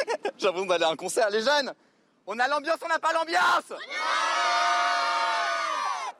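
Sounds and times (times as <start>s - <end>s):
speech: 0.4s - 4.2s
large euphoric crowd of young admirers cheering and shouting for the pope: 3.8s - 6.1s.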